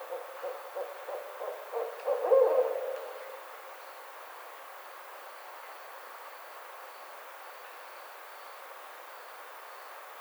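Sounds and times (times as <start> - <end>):
barred owl hooting: 0.0 - 3.2.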